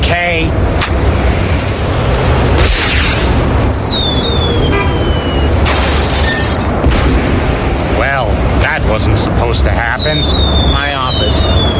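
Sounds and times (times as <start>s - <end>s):
booming rumble: 0.6s - 11.7s
firework whistling: 2.7s - 6.7s, 9.7s - 11.7s
speech: 9.5s - 10.9s.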